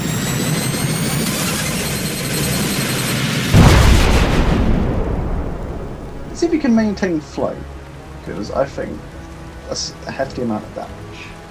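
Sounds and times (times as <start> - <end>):
ear-piercing energy beam blast sound effect: 1.1 - 6.6
heavy booming burst: 3.4 - 7.2
speech: 6.4 - 11.0.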